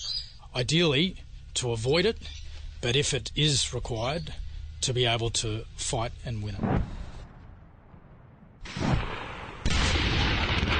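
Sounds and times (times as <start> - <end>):
speech: 0.6 - 6.9
sniper fire in a military war exercise: 5.6 - 10.7
artillery fire in a military war exercise: 6.6 - 10.7.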